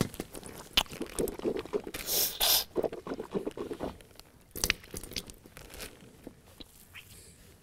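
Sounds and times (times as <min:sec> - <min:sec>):
water sloshing as someone rinses mouth and nose during wudu ablution: 0:00.9 - 0:04.1.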